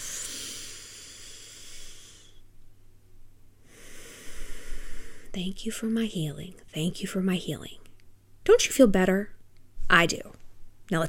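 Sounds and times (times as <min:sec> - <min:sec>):
deep breath in: 0:00.0 - 0:02.4, 0:03.6 - 0:05.4
speech: 0:05.4 - 0:07.8, 0:08.5 - 0:11.0.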